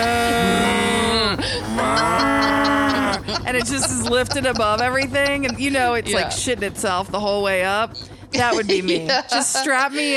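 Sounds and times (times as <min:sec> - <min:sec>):
human voice imitating a cow mooing: 0:00.0 - 0:03.5
laughter: 0:00.0 - 0:06.4, 0:08.4 - 0:10.1
speech: 0:03.5 - 0:10.1.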